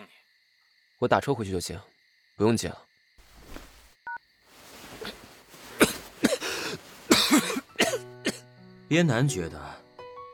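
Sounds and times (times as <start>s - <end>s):
speech: 1.0s - 2.9s, 8.9s - 9.8s
quiet rustling: 3.2s - 7.7s
person coughing harshly: 5.0s - 8.4s.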